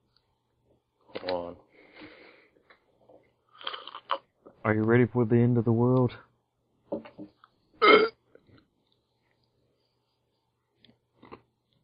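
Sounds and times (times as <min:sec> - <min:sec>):
speech: 0:04.7 - 0:06.3
loud raspy burp: 0:07.8 - 0:08.2.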